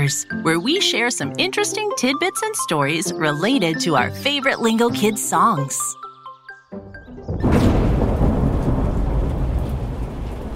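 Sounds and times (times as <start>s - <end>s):
speech: 0.0s - 6.0s
thunder: 7.3s - 10.5s
pouring rain: 7.5s - 10.5s.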